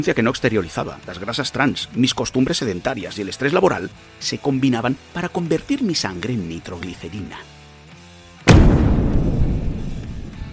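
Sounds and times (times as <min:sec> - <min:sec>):
speech: 0:00.0 - 0:07.6
explosion: 0:08.5 - 0:10.5.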